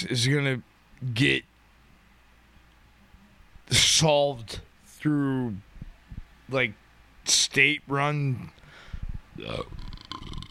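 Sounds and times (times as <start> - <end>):
speech: 0.0 - 1.5, 3.7 - 5.7, 6.5 - 8.6, 9.4 - 9.9
loud croaky burp: 9.5 - 10.4.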